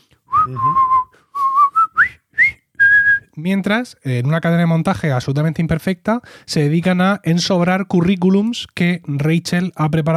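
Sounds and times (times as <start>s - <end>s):
several people whistling a military march melody in an apartment: 0.3s - 3.2s
speech: 0.5s - 1.1s, 3.4s - 10.1s.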